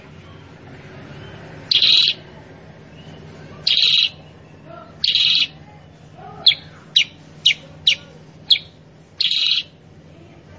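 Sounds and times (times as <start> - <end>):
sooty-headed bulbul song: 0.0 - 10.0
faint hum: 0.0 - 10.5.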